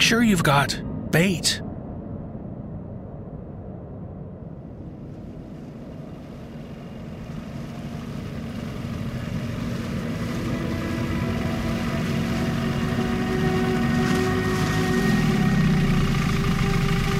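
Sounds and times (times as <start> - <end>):
speech: 0.0 - 1.6
small wooden boat engine humming on a lake: 4.9 - 17.1.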